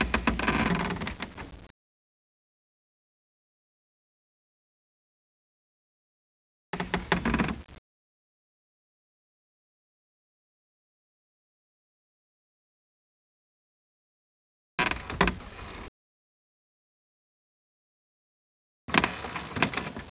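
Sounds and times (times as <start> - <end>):
wood creaking: 0.0 - 1.7, 6.8 - 7.8, 14.8 - 15.9, 18.9 - 20.1.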